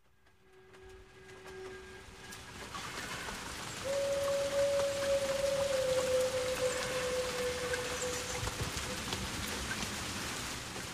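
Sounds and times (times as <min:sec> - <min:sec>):
rain pattering in a song intro: 0:00.0 - 0:10.9
sustained slightly wavering higher note: 0:03.9 - 0:08.6.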